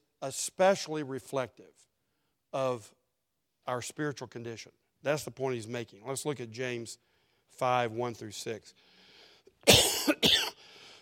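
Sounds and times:
speech: 0.2 - 1.9, 2.5 - 3.0, 3.7 - 8.9, 9.6 - 10.5
loud harsh coughs: 9.6 - 10.6.

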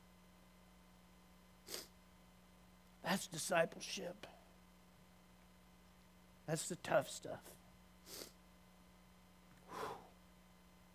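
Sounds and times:
faint steady electrical hum: 0.0 - 10.9
short breathy sneezes: 1.7 - 1.9, 8.1 - 8.4
speech: 3.1 - 4.3, 6.5 - 8.3.

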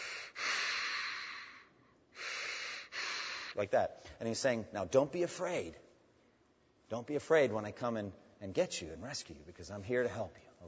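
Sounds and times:
person imitating a fireman breathing through a rubber mask breathing apparatus: 0.0 - 3.6
speech: 3.6 - 5.9, 6.9 - 10.6.

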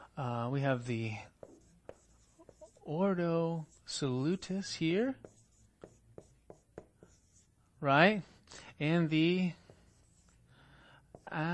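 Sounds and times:
quiet room hum: 0.0 - 11.5
speech: 0.2 - 1.3, 2.9 - 5.3, 7.8 - 9.6, 11.3 - 11.5
chalk or marker tapping and scraping on a board: 0.8 - 7.5, 9.4 - 10.4, 11.1 - 11.5.

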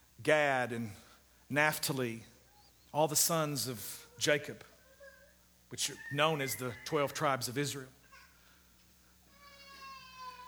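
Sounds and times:
quiet hum: 0.0 - 10.4
speech: 0.2 - 2.3, 2.9 - 4.7, 5.7 - 8.0
young baby crying: 4.8 - 7.2, 8.0 - 8.4, 9.3 - 10.4.

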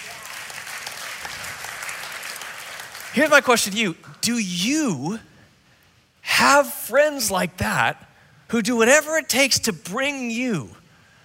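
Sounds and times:
audience clapping: 0.0 - 3.5
speech: 3.1 - 5.3, 6.4 - 10.8.

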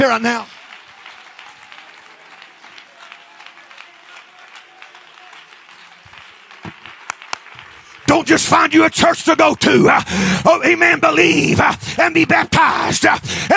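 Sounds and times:
speech: 0.0 - 0.6, 8.3 - 13.5
church audience clapping in praise: 0.0 - 13.5.

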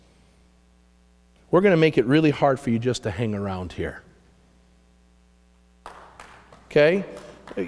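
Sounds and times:
quiet hum: 0.0 - 7.6
speech: 1.5 - 4.1, 6.8 - 7.6
church audience clapping: 5.8 - 7.6.

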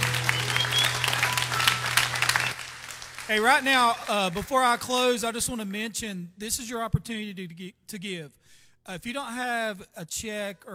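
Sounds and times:
church congregation clapping in praise: 0.0 - 5.2
speech: 3.3 - 10.7.

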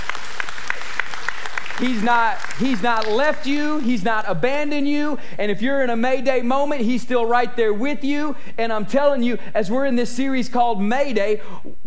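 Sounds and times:
audience applauding in praise of God: 0.0 - 4.0
speech: 1.8 - 11.8.

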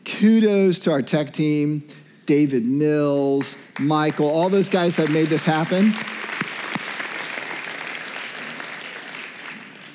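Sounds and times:
speech: 0.2 - 6.1
large crowd applauding in a big room: 3.8 - 9.9.

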